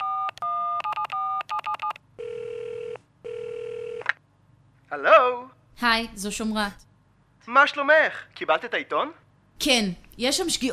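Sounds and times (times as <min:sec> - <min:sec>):
keypad tones from a mobile phone being dialed: 0:00.0 - 0:02.0
telephone ringing tones: 0:00.0 - 0:04.2
speech: 0:04.9 - 0:06.9, 0:07.5 - 0:10.7.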